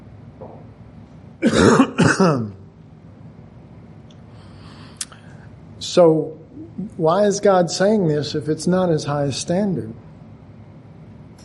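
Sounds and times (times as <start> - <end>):
harsh throat clearing from a sore throat: 1.4 - 2.6
person coughing from a sore, troubled throat: 1.4 - 2.6
speech: 1.4 - 2.6, 6.0 - 10.1.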